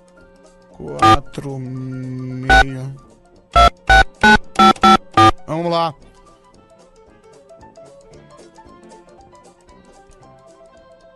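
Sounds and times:
speech: 0.8 - 3.1, 5.6 - 6.0
telephone ringing on an outgoing call to a listener: 3.6 - 5.5.

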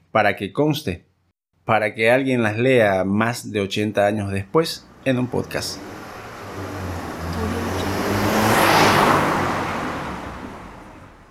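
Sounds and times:
speech: 0.1 - 6.0
low car engine hum: 4.8 - 11.2
single car driving past on a street: 4.8 - 11.2.

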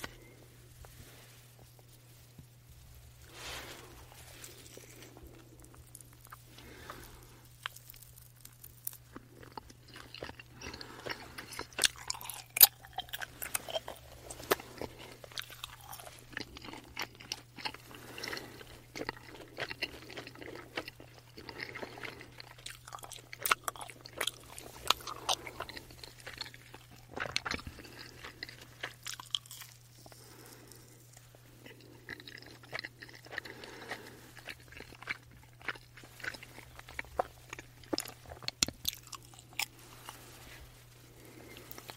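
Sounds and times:
chewing chewy jelly: 0.0 - 41.9
steady low hum: 0.0 - 41.9.

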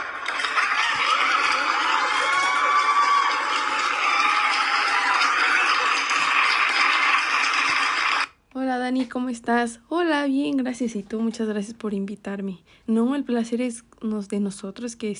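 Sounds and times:
audience applause: 0.0 - 8.3
audience cheering: 0.0 - 8.4
speech: 8.9 - 15.1.

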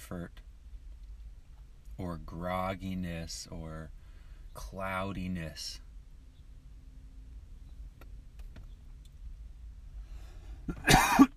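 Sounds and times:
speech: 0.1 - 0.4, 2.0 - 4.0, 4.6 - 5.8
throat-clearing rasp: 10.7 - 11.3
throaty raspy cough: 10.7 - 11.3.

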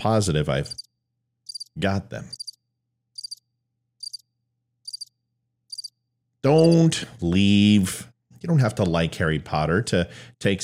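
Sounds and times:
speech: 0.0 - 0.9, 1.8 - 2.4, 6.4 - 10.6
cricket chirps: 0.7 - 0.9, 1.5 - 2.6, 3.2 - 6.0.

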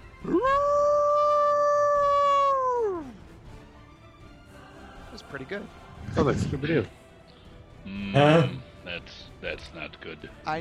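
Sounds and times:
person imitating the howl of a creature rising on its back legs: 0.2 - 3.1
speech: 5.3 - 7.0, 8.0 - 10.5.

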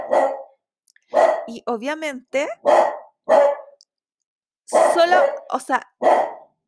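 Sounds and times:
dog barking: 0.0 - 1.6, 2.6 - 3.8, 4.7 - 6.6
speech: 1.5 - 2.9, 5.0 - 6.3.

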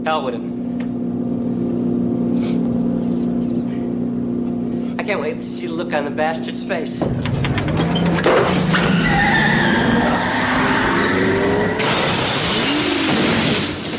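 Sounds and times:
speech: 0.0 - 0.6, 5.1 - 7.6
car engine roaring: 0.0 - 13.9
car tires skidding and squealing: 7.1 - 13.8.

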